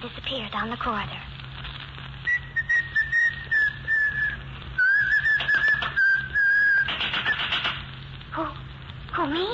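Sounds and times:
speech: 0.0 - 1.3, 9.2 - 9.5
low hum: 0.0 - 9.5
person whistling a wavering tune: 2.3 - 7.5
rapid typewriter-like clicking: 5.1 - 7.9.

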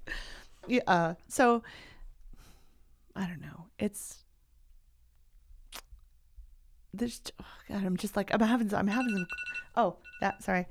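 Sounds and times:
speech: 0.7 - 1.9, 3.2 - 4.2, 6.9 - 10.7
phone alarm chiming electronic tones: 8.9 - 10.7.

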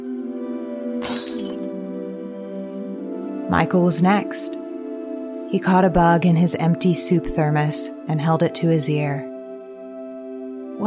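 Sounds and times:
glass jar tossed by a woman smashing: 1.0 - 1.8
tinkling glass shards: 1.0 - 1.8
speech: 3.5 - 4.6, 5.5 - 9.3.

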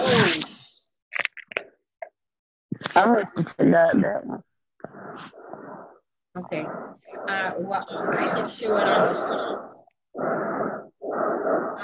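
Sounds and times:
speech: 3.0 - 5.4, 6.4 - 11.8
heavy breathing against a microphone during an online video session: 4.8 - 11.8.

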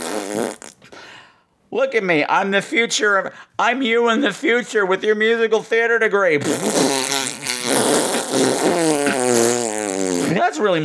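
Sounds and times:
voice blowing a buzzy fart-like raspberry: 0.0 - 0.9, 6.4 - 10.4
speech: 1.7 - 7.1, 10.6 - 10.8.

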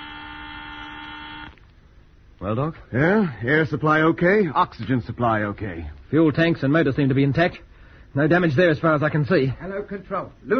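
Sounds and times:
loud harsh electric alarm buzzer: 0.0 - 1.6
faint noise: 0.0 - 10.5
speech: 2.4 - 10.5.

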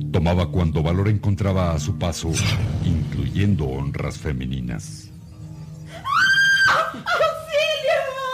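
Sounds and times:
speech: 0.1 - 5.1
woman screaming: 5.9 - 8.3.

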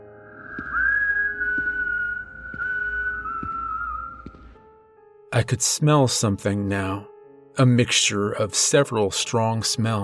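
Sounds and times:
eerie wavering whistle: 0.0 - 4.6
speech: 5.4 - 10.0.

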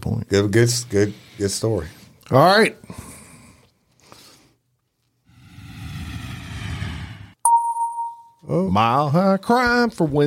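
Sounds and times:
speech: 0.3 - 3.1, 8.5 - 10.2
jet plane engine roaring overhead: 5.6 - 7.4.

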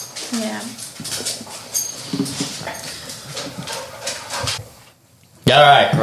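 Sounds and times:
dogs whimpering and panting: 0.0 - 4.6
speech: 0.3 - 1.4, 5.5 - 6.0.

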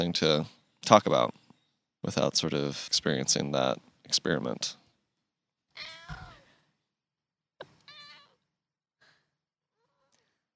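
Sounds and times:
speech: 0.0 - 1.4, 2.0 - 4.8
cat meowing: 5.8 - 6.4, 7.7 - 8.4.

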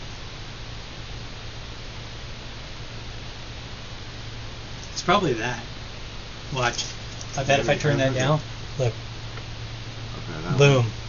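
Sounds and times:
low electrical hum: 0.0 - 11.0
steady static hiss: 0.0 - 11.0
speech: 5.0 - 5.7, 6.5 - 9.0, 10.5 - 11.0.

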